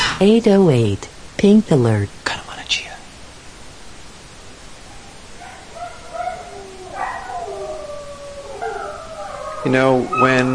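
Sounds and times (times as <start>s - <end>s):
speech: 0.2s - 2.8s, 9.6s - 10.5s
dogs howling: 4.8s - 10.5s.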